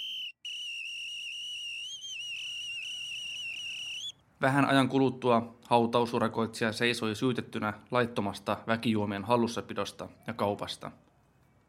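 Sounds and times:
shrill police whistle blown hard by a policeman on a stairway: 0:00.0 - 0:04.1
speech: 0:04.4 - 0:11.0.

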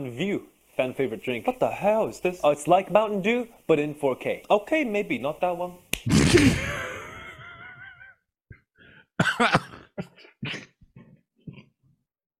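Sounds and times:
speech: 0:00.0 - 0:06.9, 0:09.3 - 0:09.6
man coughing in a laughing coughing fit: 0:06.1 - 0:07.2, 0:09.2 - 0:10.8
man laughing wheezily during a coughing fit: 0:06.1 - 0:11.7.

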